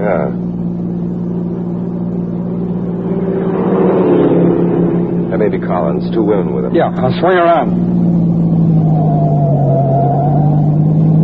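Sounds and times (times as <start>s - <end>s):
car engine accelerating: 0.0s - 11.2s
speech: 5.9s - 8.2s.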